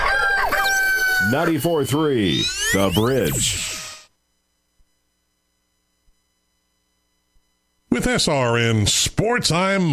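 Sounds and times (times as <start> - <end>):
rooster crowing with a loud brassy call: 0.0 - 1.6
speech: 1.3 - 3.8, 8.0 - 9.9
faint steady tone: 1.3 - 8.6.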